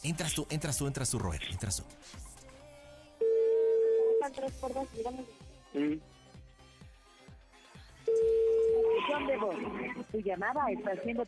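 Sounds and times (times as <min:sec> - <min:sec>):
speech: 0:00.0 - 0:02.3, 0:04.3 - 0:06.2, 0:09.1 - 0:11.2
ringback tone of an outgoing telephone call: 0:03.2 - 0:04.3, 0:08.1 - 0:09.7.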